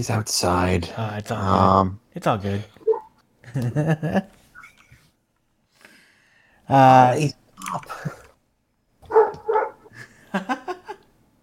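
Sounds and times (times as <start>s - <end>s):
speech: 0.0s - 2.8s, 3.5s - 4.4s, 6.7s - 8.2s, 10.3s - 10.6s
dog barking outside: 2.8s - 3.1s, 9.1s - 9.9s.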